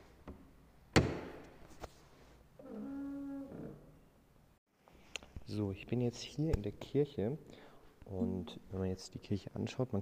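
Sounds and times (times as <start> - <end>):
wooden church door banging: 1.0 - 1.4
wooden church door creaking as it swings: 2.6 - 4.0
speech: 5.5 - 10.0.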